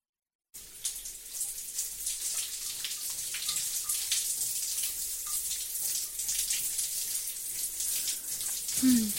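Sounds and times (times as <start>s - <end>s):
water running to fill a bath: 0.6s - 9.1s.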